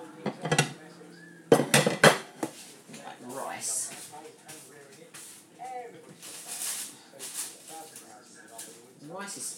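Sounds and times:
ceramic plates and a bowl clattering in a kitchen cupboard: 0.2s - 0.8s, 1.5s - 2.4s
speech: 9.3s - 9.5s.

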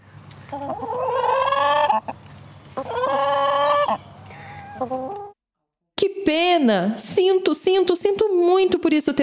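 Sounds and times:
speech: 0.5s - 1.0s, 6.6s - 9.2s
chicken clucking and squawking: 0.5s - 5.4s.

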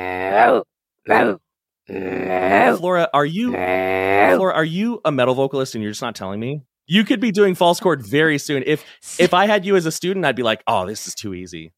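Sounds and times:
speech: 0.0s - 2.0s, 2.8s - 11.7s
low rough kargyraa throat-singing growls: 0.0s - 2.8s, 3.5s - 4.6s.

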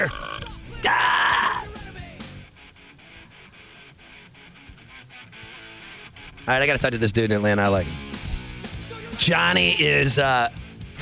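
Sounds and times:
loud raspy throaty burp: 0.0s - 1.7s
speech: 6.5s - 8.1s, 9.2s - 10.6s.

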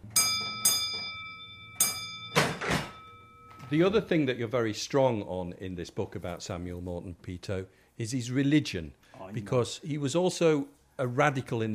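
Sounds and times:
bell ringing: 0.0s - 4.0s
speech: 3.7s - 11.7s.

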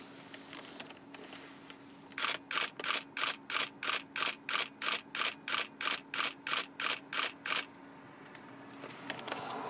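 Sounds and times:
camera shutter firing in continuous burst: 2.2s - 7.7s.

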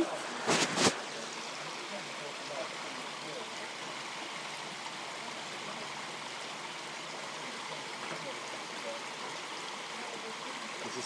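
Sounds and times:
waterfall rushing water: 0.0s - 11.0s.

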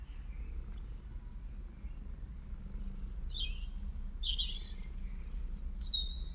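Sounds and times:
cats purring: 0.0s - 4.2s
bird chirps and tweets: 0.0s - 6.3s.

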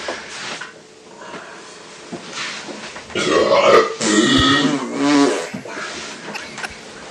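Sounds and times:
man making farting noises: 3.1s - 6.8s
man burping loudly: 3.2s - 6.8s.

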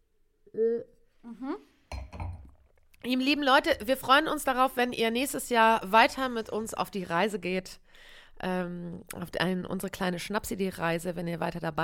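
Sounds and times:
short wordless vocal sounds: 0.4s - 1.8s
speech: 0.6s - 1.7s, 3.0s - 11.8s
glasses clinking together in a toast: 1.9s - 2.5s.

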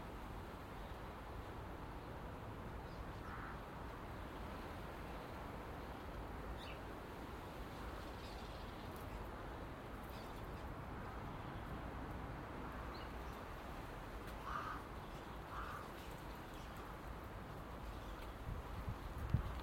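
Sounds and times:
rain pattering onto a hard surface: 0.0s - 19.6s
bird cawing: 3.2s - 3.6s, 14.4s - 14.9s, 15.5s - 16.0s.

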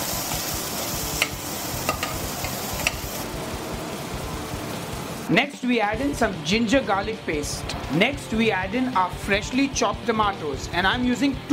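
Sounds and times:
chopped onion and cumin seeds sizzling in a hot pan: 0.0s - 5.4s
speech: 5.3s - 11.5s.

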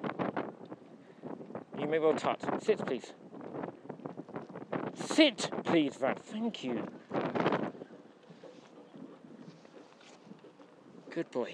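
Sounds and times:
wind gusting against the microphone: 0.0s - 11.5s
speech: 1.8s - 3.2s, 5.0s - 7.4s, 11.2s - 11.5s.

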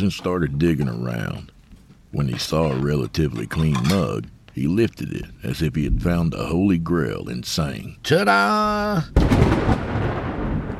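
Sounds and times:
speech: 0.0s - 10.0s
floor-shaking thunder after a lightning flash: 9.2s - 10.7s.

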